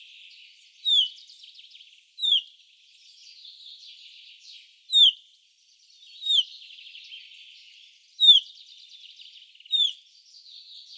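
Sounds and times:
faint twittering birds: 0.0s - 10.9s
common chaffinch Fringilla coelebs crisp falling pink call notes: 0.9s - 1.1s, 2.2s - 2.4s, 9.7s - 10.0s.

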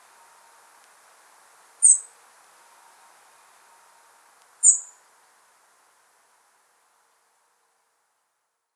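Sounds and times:
low quiet hiss: 0.0s - 8.7s
European robin Erithacus rubecula uttering sharp high-pitched thin notes: 4.6s - 4.9s.

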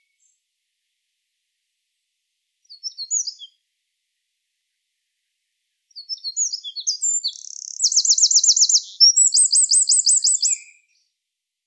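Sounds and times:
Eurasian wren singing, Troglodytes troglodytes: 2.7s - 3.5s, 5.9s - 11.0s.

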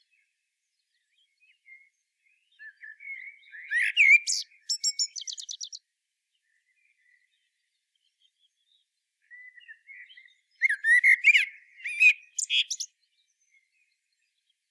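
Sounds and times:
common blackbird Turdus merula singing: 1.2s - 5.8s, 9.2s - 14.3s.

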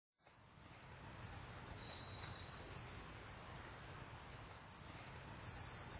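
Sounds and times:
Eurasian blue tit ticking and buzzing trill: 0.2s - 3.4s, 4.3s - 5.9s.

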